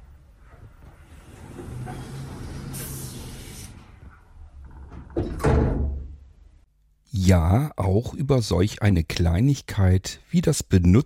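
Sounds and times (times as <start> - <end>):
elevator door opening and closing: 0.0 - 6.0
speech: 7.3 - 11.0.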